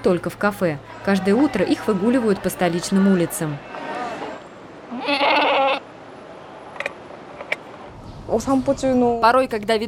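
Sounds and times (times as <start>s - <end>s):
speech: 0.0s - 3.9s, 8.4s - 9.8s
goat bleating: 4.9s - 5.9s.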